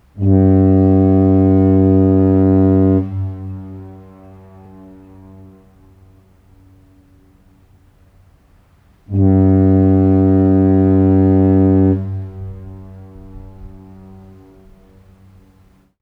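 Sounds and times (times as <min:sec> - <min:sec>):
foghorn: 0:00.0 - 0:15.9.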